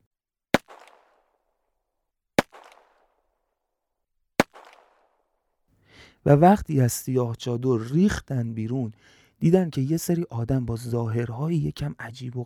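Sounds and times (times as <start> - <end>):
rifle gunshots during an attack on a camp at night: 0.6 - 1.2, 2.4 - 3.0, 4.4 - 5.0
speech: 6.2 - 12.4.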